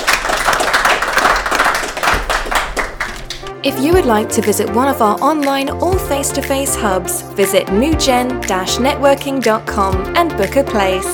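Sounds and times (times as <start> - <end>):
audience applauding: 0.0 - 3.5
speech: 3.6 - 11.1.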